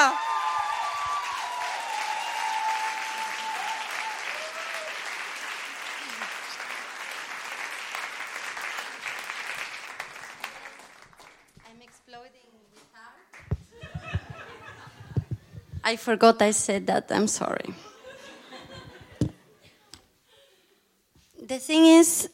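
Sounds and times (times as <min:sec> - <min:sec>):
audience applause greeting a dancer: 0:00.0 - 0:11.9
laughter: 0:13.6 - 0:15.7, 0:17.8 - 0:19.9
speech: 0:15.9 - 0:17.9, 0:21.7 - 0:22.3.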